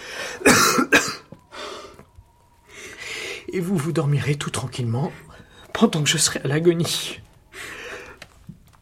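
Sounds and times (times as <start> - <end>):
strained hacking choking cough: 0.4 - 1.2
speech: 3.6 - 7.3.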